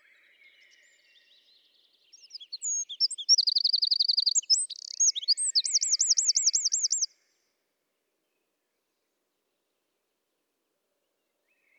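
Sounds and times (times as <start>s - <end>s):
Eurasian wren Troglodytes troglodytes singing: 2.0s - 7.1s.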